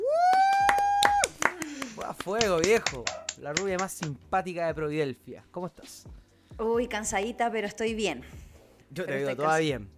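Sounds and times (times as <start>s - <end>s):
long high-pitched vocal whoop: 0.0s - 1.4s
sharp hand claps: 0.2s - 4.2s
speech: 2.2s - 9.9s.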